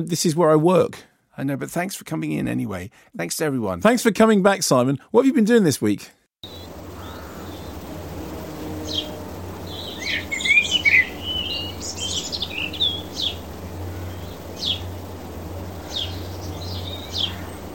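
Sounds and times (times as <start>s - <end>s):
speech: 0.0s - 6.6s
birds chirping and tweeting: 6.4s - 17.7s
steady low hum: 6.4s - 17.7s.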